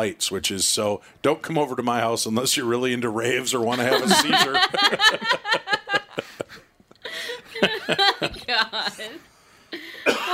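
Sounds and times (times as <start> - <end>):
speech: 0.0 - 5.7, 7.6 - 10.3
laughter: 3.7 - 9.2
person coughing sharply: 9.8 - 10.3.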